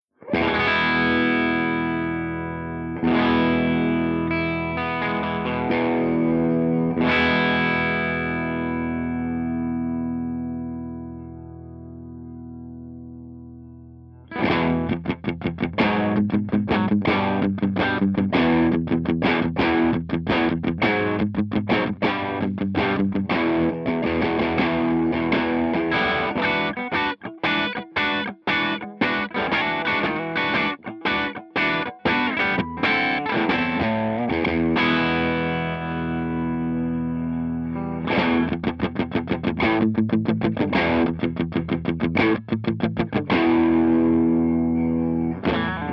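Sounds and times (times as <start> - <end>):
electric guitar with humbucker through Marshall JTM60 channel 2 crunch: 0.2 - 12.6, 14.1 - 45.9.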